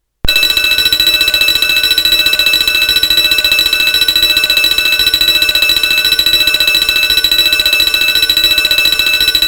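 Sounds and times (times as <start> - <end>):
bell tone: 0.3 - 9.4.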